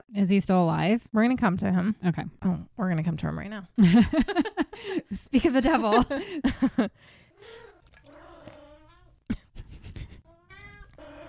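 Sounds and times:
speech: 0.1s - 7.6s
pet cat meowing: 10.4s - 11.2s.

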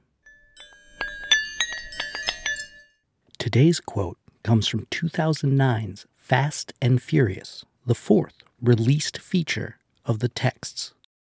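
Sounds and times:
metal wrenches clinking together: 0.3s - 2.9s
speech: 3.5s - 11.0s.

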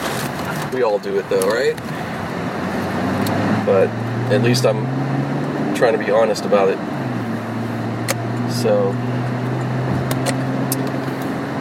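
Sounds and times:
car engine and road drone driving onto a freeway: 0.0s - 11.5s
speech: 0.7s - 1.9s, 3.7s - 5.2s, 5.8s - 7.0s, 8.5s - 9.2s.

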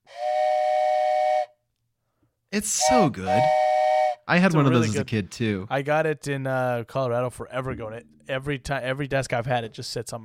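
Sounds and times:
toy train whistle blowing: 0.0s - 1.6s, 2.8s - 4.2s
speech: 2.5s - 3.7s, 4.3s - 10.2s.

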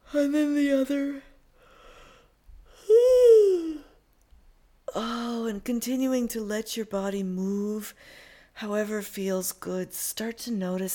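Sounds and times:
speech: 0.1s - 1.3s, 5.0s - 10.9s
person yawning: 2.8s - 4.0s.

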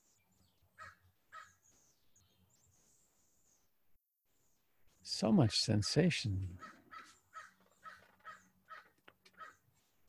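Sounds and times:
crow cawing: 0.8s - 1.6s, 6.6s - 10.0s
speech: 5.1s - 6.7s.

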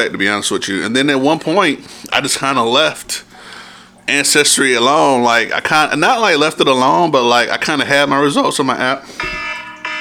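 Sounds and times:
speech: 0.0s - 9.5s
loud electronic alarm tone beeping: 9.1s - 9.9s.

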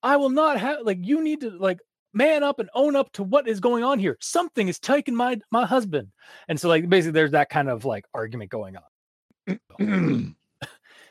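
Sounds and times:
speech: 0.0s - 8.9s, 9.5s - 10.8s
drawn-out voiced throat-clearing: 9.5s - 10.8s
person coughing deliberately to interrupt an argument: 9.5s - 10.9s.

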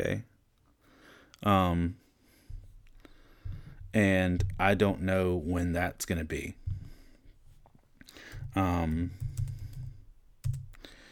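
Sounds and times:
speech: 0.0s - 0.3s, 1.4s - 2.0s, 3.9s - 6.6s, 8.5s - 9.3s
typing on a computer keyboard: 8.2s - 10.8s.

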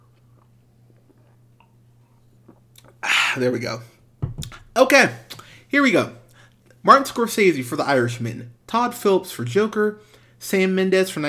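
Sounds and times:
person sipping a beer: 0.0s - 3.4s
steady low electrical hum: 0.0s - 11.2s
speech: 3.4s - 4.0s, 4.8s - 6.2s, 6.8s - 11.2s.

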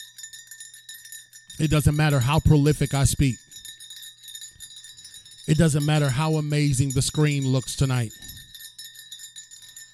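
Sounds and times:
bell ringing: 0.0s - 9.9s
speech: 1.6s - 3.4s, 5.5s - 8.3s.

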